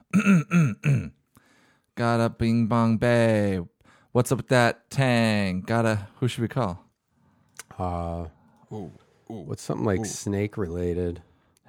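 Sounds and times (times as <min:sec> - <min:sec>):
man clearing his throat before a prank phone call: 0:00.0 - 0:01.2
speech: 0:00.1 - 0:01.2, 0:02.0 - 0:06.8, 0:07.8 - 0:11.6.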